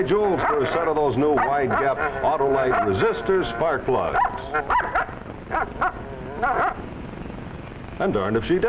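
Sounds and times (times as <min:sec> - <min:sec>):
speech: 0:00.0 - 0:06.7, 0:08.0 - 0:08.6
dog barking and yipping: 0:00.4 - 0:02.0, 0:02.7 - 0:03.0, 0:04.1 - 0:06.8.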